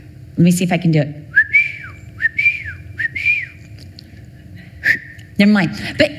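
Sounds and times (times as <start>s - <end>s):
speech: 0.4s - 1.3s, 5.4s - 6.1s
person whistling a signal call for children to come home: 1.4s - 3.6s.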